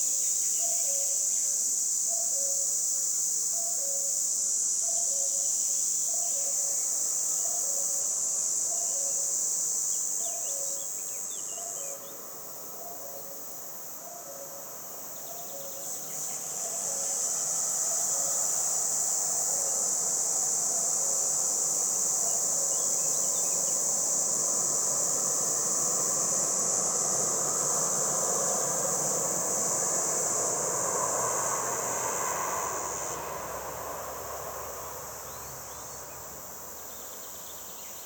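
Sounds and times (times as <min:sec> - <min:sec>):
cicada buzzing by the roadside: 0:00.0 - 0:38.0
passing traffic: 0:15.8 - 0:37.8
low road hum: 0:16.2 - 0:38.0.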